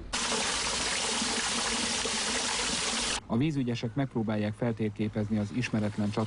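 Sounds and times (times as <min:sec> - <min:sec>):
water trickling and seeping through riverbank wall along the Tisza river: 0:00.0 - 0:03.2
speech: 0:03.3 - 0:06.2.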